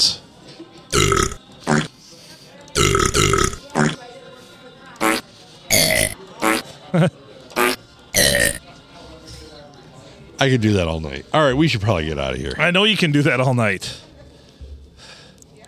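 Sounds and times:
loud burps with echo: 0.9 - 2.0, 2.8 - 4.0, 5.0 - 6.7, 7.6 - 8.6
speech: 6.9 - 7.2, 10.4 - 14.0.

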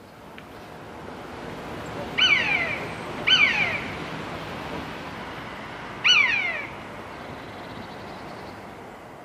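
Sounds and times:
common buzzard mewing call: 2.2 - 4.0, 6.0 - 6.8.

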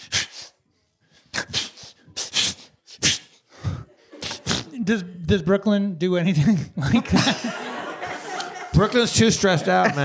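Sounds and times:
person imitating a dog's sneezes with breathy snorts: 1.3 - 4.9
laughter: 3.7 - 5.1, 6.8 - 10.0
speech: 4.8 - 7.6, 8.7 - 10.0.

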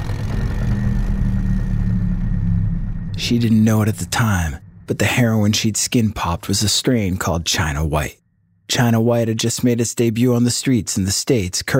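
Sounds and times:
motorcycle engine idling with a deep steady rumble: 0.0 - 3.8
speech: 3.2 - 11.7.

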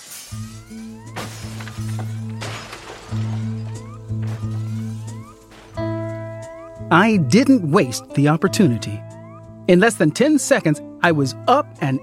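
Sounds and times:
tinkling glass debris: 0.0 - 6.7
glass jewel cases shattering under a crowbar: 0.0 - 6.9
speech: 6.9 - 9.1, 9.7 - 12.0.

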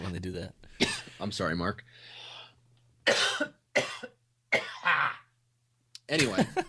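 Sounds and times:
speech: 0.1 - 2.2, 3.1 - 4.2, 6.1 - 6.6
harsh coughing after a fly went down the throat: 0.8 - 1.2, 3.0 - 5.3.

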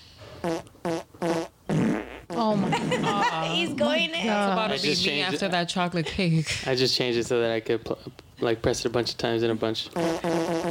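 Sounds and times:
brassy fart sound effects: 0.4 - 3.2, 10.0 - 10.6
laughter: 2.4 - 5.1
speech: 3.1 - 10.6.

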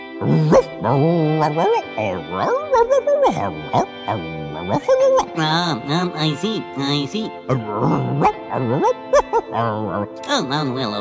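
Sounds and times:
human voice imitating a dog with yips and short barks: 0.2 - 5.4, 8.0 - 10.1
speech: 0.2 - 11.0.

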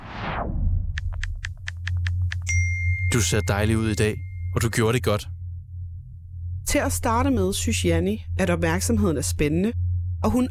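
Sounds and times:
low steady hum: 0.6 - 10.4
phone message notification chime: 2.5 - 4.7
short electronic pings of a phone notification: 2.5 - 4.8
speech: 3.1 - 5.4, 6.7 - 10.4.

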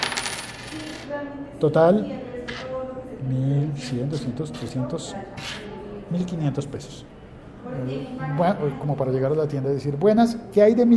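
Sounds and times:
200-peso coin dropping onto a hard surface: 0.0 - 1.1
speech: 0.7 - 2.4, 3.2 - 10.9.

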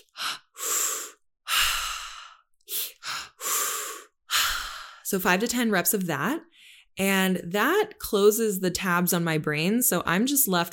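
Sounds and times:
breath work exercise inhales and exhales: 0.0 - 5.1
speech: 5.1 - 10.7.

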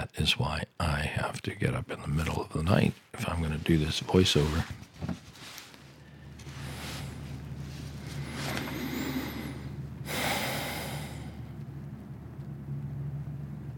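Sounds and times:
speech: 0.1 - 4.8
logging truck rumbling on a road half a mile away: 6.0 - 13.7.

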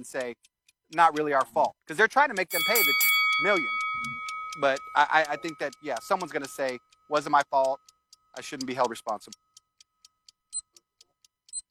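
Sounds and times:
speech: 0.0 - 9.4
debate timer buzzer going off: 2.4 - 10.9.

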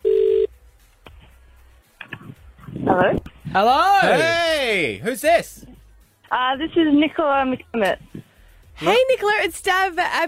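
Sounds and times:
phone call ringing tone: 0.0 - 0.5
speech: 3.0 - 5.7, 6.3 - 8.1, 8.8 - 10.2.

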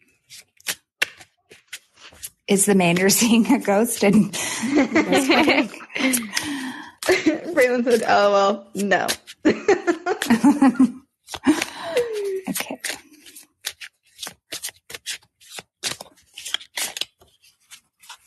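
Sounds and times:
deck of cards being shuffled for a card reading: 0.1 - 4.3, 6.0 - 9.4, 10.2 - 18.2
speech: 2.5 - 6.5, 7.8 - 9.2, 10.3 - 11.0
person laughing: 4.1 - 8.1, 9.5 - 13.0.

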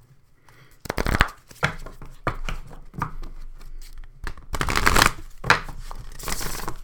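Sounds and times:
poker shuffling a deck of oracle cards: 0.8 - 1.7, 4.2 - 6.8.

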